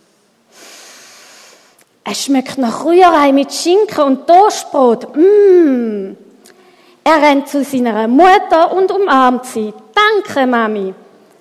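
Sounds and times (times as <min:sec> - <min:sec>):
long deep inhale drawn in through the nose: 0:00.5 - 0:01.8
speech: 0:02.1 - 0:06.2, 0:07.1 - 0:11.0.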